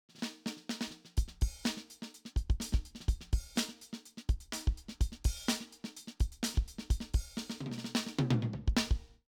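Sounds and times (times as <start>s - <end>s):
Simmons SD1200 electronic drum classic funk beat: 1.2s - 9.0s.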